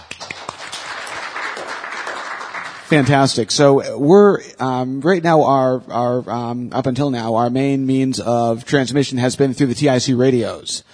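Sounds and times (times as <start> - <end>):
audience applause: 0.0 - 3.4
speech: 2.9 - 10.9.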